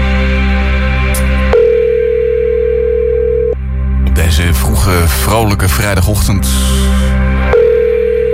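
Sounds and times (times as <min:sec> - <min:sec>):
music: 0:00.0 - 0:08.3
outgoing phone call ringing tone: 0:01.6 - 0:03.6, 0:07.5 - 0:08.3
speech: 0:05.8 - 0:07.0.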